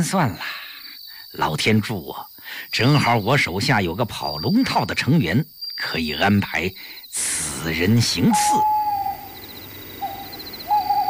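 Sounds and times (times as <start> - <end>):
speech: 0.0 - 0.6, 1.3 - 8.8
owl hooting outside a door: 8.1 - 11.0.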